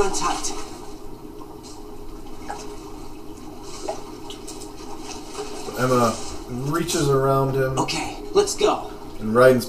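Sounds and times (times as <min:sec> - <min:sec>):
speech: 0:00.0 - 0:00.8, 0:05.8 - 0:09.6
water sloshing and splashing as a character swims in a video game: 0:00.0 - 0:09.6
small drip-like water plinks: 0:01.0 - 0:05.8.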